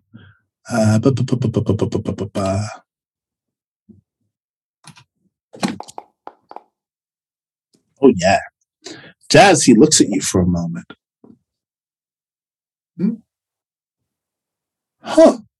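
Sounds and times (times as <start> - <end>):
speech: 0.7 - 2.8, 8.0 - 11.0, 13.0 - 13.2, 15.0 - 15.5
dice clacking as they tumble and settle: 5.6 - 6.7
dice rattling in a cup: 5.8 - 6.6.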